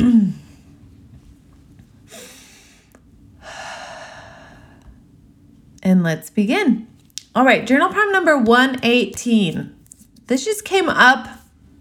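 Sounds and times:
deep breath: 2.1s - 5.0s
speech: 5.9s - 11.4s.

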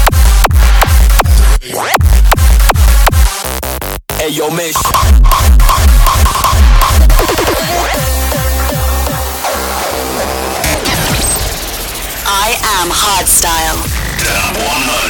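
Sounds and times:
pounding distorted kick drums: 0.0s - 11.9s
loud hardstyle electronic dance music: 0.0s - 15.0s
speech: 4.3s - 8.0s, 12.5s - 15.0s
dense synth leads with pitch-sweeping effects: 4.8s - 14.3s.

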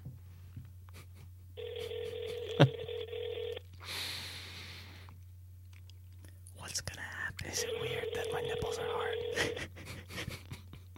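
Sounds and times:
low electrical hum: 0.0s - 10.9s
buzzy ringback tone of an outgoing phone call: 1.6s - 3.6s, 7.6s - 9.6s.

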